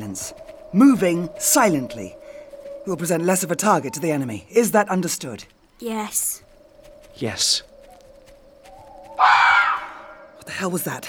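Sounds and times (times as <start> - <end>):
speech: 0.2 - 2.2, 2.8 - 6.4, 7.2 - 7.7, 9.2 - 9.5, 10.5 - 11.0
fox mating call scream: 3.0 - 4.4, 8.9 - 10.4.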